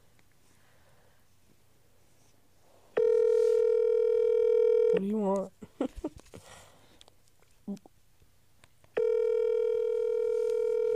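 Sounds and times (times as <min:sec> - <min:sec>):
telephone ringing tone of outgoing call: 0:03.0 - 0:05.0, 0:09.0 - 0:10.9
speech: 0:05.0 - 0:05.8.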